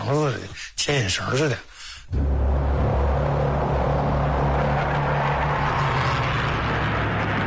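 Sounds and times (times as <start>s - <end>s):
speech: 0.1s - 2.4s
aircraft engine roar: 2.2s - 7.4s.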